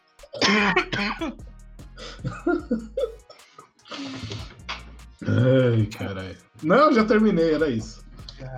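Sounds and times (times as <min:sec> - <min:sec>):
person coughing harshly: 0:00.2 - 0:01.4, 0:02.1 - 0:03.3
speech: 0:00.3 - 0:03.2, 0:03.9 - 0:04.6, 0:05.2 - 0:08.5.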